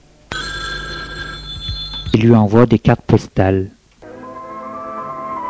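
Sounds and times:
telephone bell ringing: 0:00.3 - 0:02.3
speech: 0:02.2 - 0:03.8.

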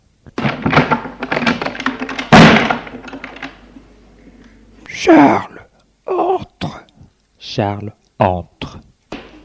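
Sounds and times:
door thump: 0:00.4 - 0:03.0
wooden door knocks: 0:00.4 - 0:03.6
speech: 0:05.0 - 0:05.5, 0:07.6 - 0:08.8.

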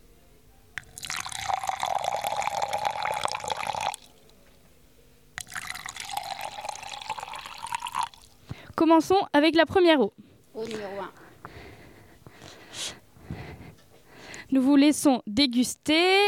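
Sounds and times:
water poured from a bottle into a glass: 0:00.8 - 0:04.2, 0:05.4 - 0:08.4
speech: 0:08.9 - 0:11.2, 0:14.5 - 0:16.2.

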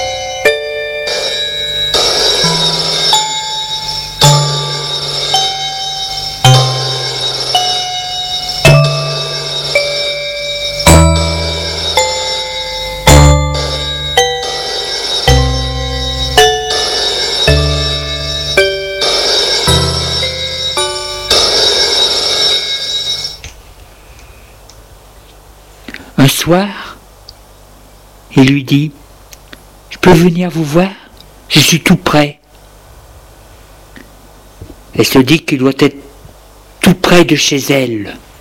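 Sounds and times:
telephone ringing with bell-like melodic ringtone over bass line: 0:00.0 - 0:23.5
speech: 0:26.5 - 0:26.7, 0:28.7 - 0:29.0, 0:30.0 - 0:32.4, 0:35.0 - 0:36.1, 0:36.9 - 0:38.2.

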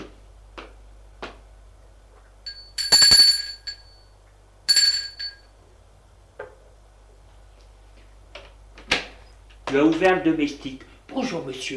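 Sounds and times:
doorbell ringing at a front door: 0:02.5 - 0:04.1, 0:04.7 - 0:05.5
speech: 0:09.7 - 0:11.7.

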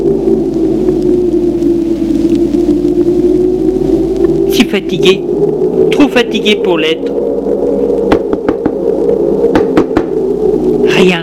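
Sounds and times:
steady low hum: 0:00.0 - 0:11.2
speech: 0:04.7 - 0:05.5, 0:06.1 - 0:07.2
knocking: 0:08.1 - 0:08.8, 0:09.5 - 0:10.2.

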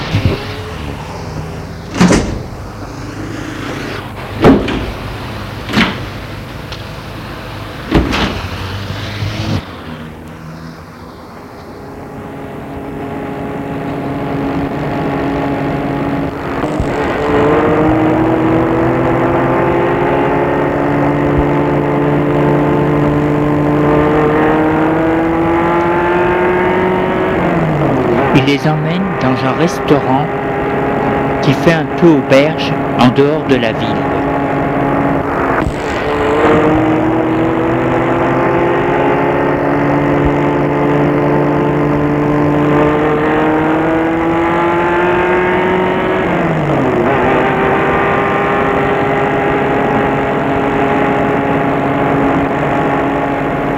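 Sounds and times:
car engine turning over: 0:00.0 - 0:53.7
door of an American convertible car shutting: 0:01.9 - 0:02.6, 0:04.3 - 0:06.2, 0:07.8 - 0:08.7
speech: 0:28.5 - 0:30.4, 0:31.4 - 0:34.1.

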